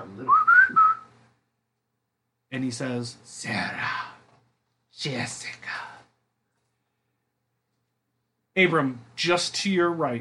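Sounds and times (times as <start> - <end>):
person whistling a short tune: 0.2 - 1.1
speech: 2.6 - 4.1, 5.0 - 5.8, 8.6 - 10.1.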